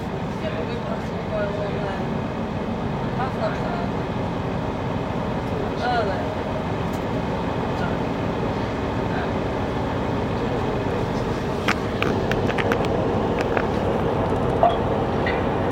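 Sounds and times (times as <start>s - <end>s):
low rumble inside a moving train carriage: 0.0s - 15.7s
sharp clanks and rattles of a slowing train: 11.2s - 15.7s.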